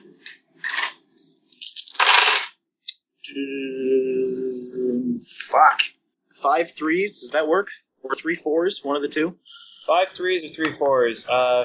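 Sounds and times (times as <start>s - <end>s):
eight dice rolled for a tabletop role-playing skill check: 0.6s - 1.0s, 1.6s - 2.6s
speech: 3.4s - 4.0s, 5.1s - 11.6s.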